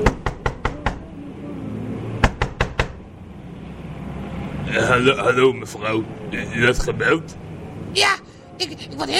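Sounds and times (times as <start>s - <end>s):
knuckles knocking on a window: 0.0s - 1.0s, 2.2s - 3.0s
speech: 4.7s - 9.1s.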